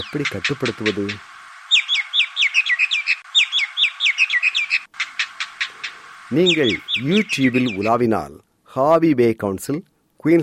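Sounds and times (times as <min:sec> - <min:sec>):
speech: 0:00.0 - 0:01.3, 0:06.3 - 0:10.4
Indian myna calling: 0:00.0 - 0:08.0.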